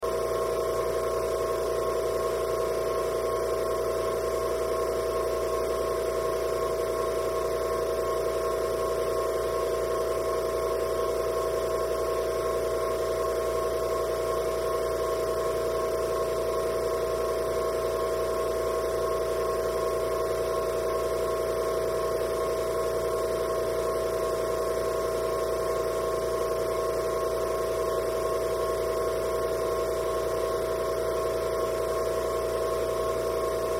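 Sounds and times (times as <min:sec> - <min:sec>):
industrial air compressor motor running constantly: 0:00.0 - 0:33.7.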